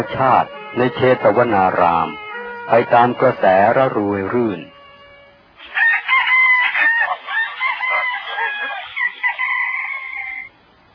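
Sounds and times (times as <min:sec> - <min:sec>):
speech: 0:00.0 - 0:04.7
jungle fowl rooster crowing at dawn in a monastery grove: 0:05.6 - 0:10.5.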